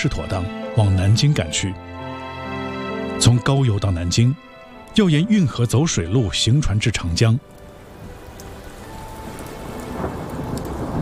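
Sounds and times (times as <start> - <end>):
speech: 0.0 - 2.6, 3.2 - 7.6
heavy rain in a thunderstorm on the water: 6.3 - 11.0
low thunder rumbling: 7.8 - 11.0.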